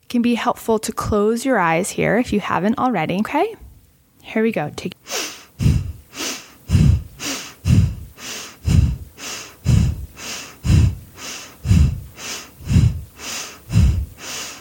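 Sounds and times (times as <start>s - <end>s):
speech: 0.1s - 3.6s, 4.2s - 4.9s
forceful rapid breathing during a guided breathing exercise: 5.0s - 14.5s.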